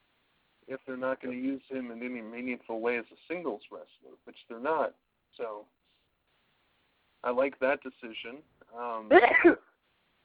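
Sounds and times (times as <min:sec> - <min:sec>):
speech: 0:00.7 - 0:05.8, 0:07.2 - 0:09.7
single loud sneeze: 0:09.1 - 0:09.7.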